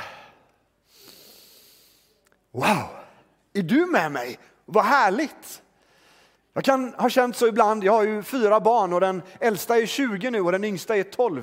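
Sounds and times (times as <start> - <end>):
long airy deep breath drawn in: 0.0 - 2.2
speech: 2.5 - 3.0, 3.6 - 5.6, 6.6 - 11.4.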